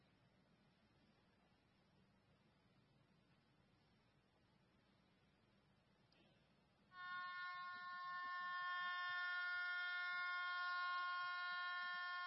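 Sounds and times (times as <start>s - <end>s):
loud sustained horn-like buzzer with a steady droning tone: 6.9s - 12.2s.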